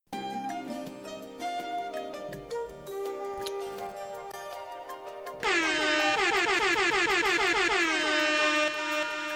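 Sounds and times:
music: 0:00.0 - 0:09.3
loud overlapping air horn blasts: 0:05.4 - 0:09.3.

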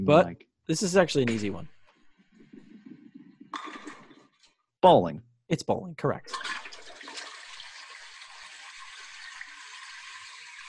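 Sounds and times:
speech: 0:00.0 - 0:01.8, 0:04.8 - 0:06.6
toilet flushing: 0:06.3 - 0:10.6.

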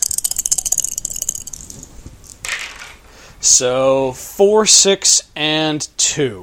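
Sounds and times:
dice rattling and clattering: 0:00.0 - 0:03.0
speech: 0:03.4 - 0:06.4.

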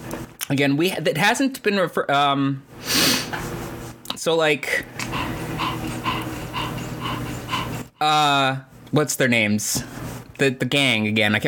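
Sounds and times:
speech: 0:00.5 - 0:03.5, 0:04.2 - 0:05.2, 0:08.0 - 0:11.4
dog panting: 0:04.8 - 0:08.0.

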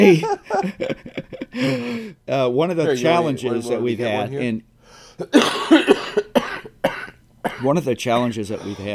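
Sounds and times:
laughter: 0:00.0 - 0:02.0
speech: 0:00.0 - 0:06.2, 0:07.5 - 0:08.9
man with a chest cold coughing: 0:05.2 - 0:07.8, 0:08.6 - 0:08.9.

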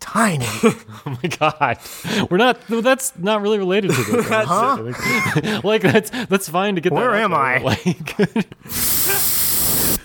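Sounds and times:
speech: 0:00.2 - 0:09.3
laughter: 0:00.6 - 0:02.4, 0:03.8 - 0:06.2, 0:07.6 - 0:09.3
spray can spraying directly into a microphone: 0:08.7 - 0:10.0.

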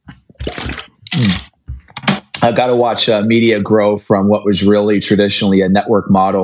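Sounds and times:
person drinking water, gulping and swallowing: 0:00.0 - 0:02.4
wet mouth noises: 0:00.0 - 0:03.0
speech: 0:02.5 - 0:06.4.

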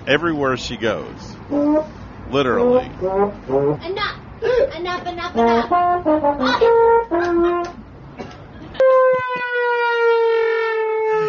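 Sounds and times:
speech: 0:00.0 - 0:07.8
comedic trombone-like blare sagging downward in pitch: 0:01.5 - 0:04.0, 0:05.3 - 0:07.8, 0:08.8 - 0:11.2
laughter: 0:08.4 - 0:09.6.

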